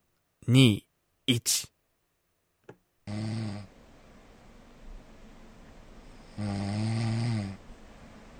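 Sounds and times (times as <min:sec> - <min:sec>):
faint hiss: 0:00.0 - 0:08.3
speech: 0:00.5 - 0:01.7, 0:06.4 - 0:07.0
man snoring: 0:03.1 - 0:03.7, 0:06.3 - 0:07.6.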